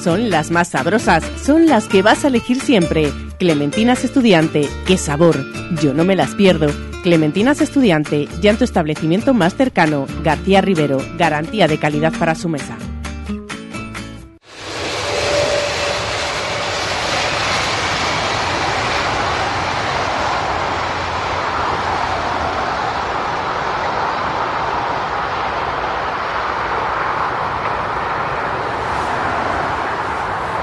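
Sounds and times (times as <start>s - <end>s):
speech: 0.0s - 13.4s
train wheels rumbling on track: 14.4s - 30.6s.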